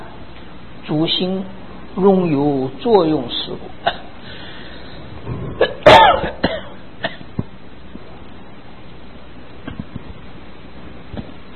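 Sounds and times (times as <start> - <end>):
speech: 0.9 - 3.8
person coughing harshly: 3.8 - 4.2, 5.4 - 7.3.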